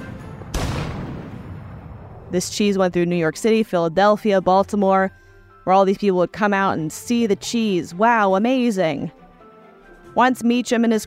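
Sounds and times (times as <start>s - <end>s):
cannon booming: 0.0s - 2.5s
speech: 2.3s - 9.2s, 10.2s - 11.0s.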